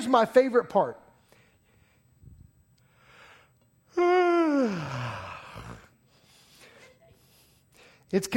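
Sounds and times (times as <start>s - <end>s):
speech: 0.0s - 1.0s, 4.0s - 5.2s, 8.1s - 8.3s
person yawning with a voiced groan: 3.9s - 6.0s.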